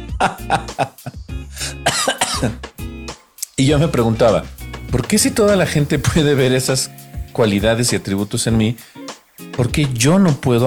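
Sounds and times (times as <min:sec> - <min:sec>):
speech: 0:00.2 - 0:02.7, 0:03.6 - 0:09.0, 0:09.6 - 0:10.6
man coughing: 0:01.8 - 0:02.6.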